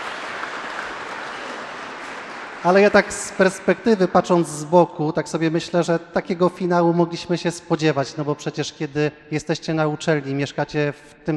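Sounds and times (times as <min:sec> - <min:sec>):
audience applause: 0:00.0 - 0:03.8
speech: 0:02.6 - 0:11.3.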